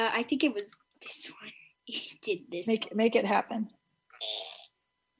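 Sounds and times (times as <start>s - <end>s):
speech: 0.1s - 1.3s, 2.3s - 3.8s
tinny electronic fart noise from a novelty keychain: 4.1s - 4.8s.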